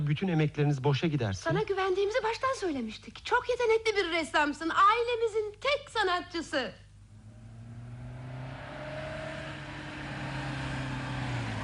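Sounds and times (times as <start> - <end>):
speech: 0.1 - 6.8
car engine humming as it arrives and pulls up: 7.0 - 11.6.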